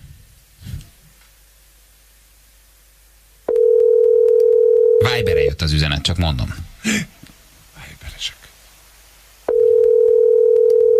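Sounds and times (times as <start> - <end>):
telephone dial tone as a call to a listener is placed: 3.5 - 5.0, 9.5 - 10.9
speech: 5.6 - 7.2, 8.2 - 8.4.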